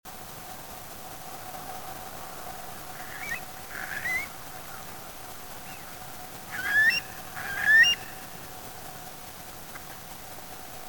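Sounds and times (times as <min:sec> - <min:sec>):
Eurasian curlew Numenius arquata calling in spring: 0:02.9 - 0:05.0, 0:05.6 - 0:08.4.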